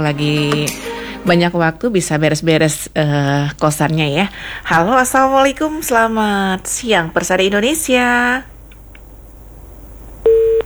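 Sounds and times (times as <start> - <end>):
speech: 0.0 - 8.5
faint hiss: 0.0 - 10.6
telephone busy tone as a call is cut off: 10.3 - 10.6.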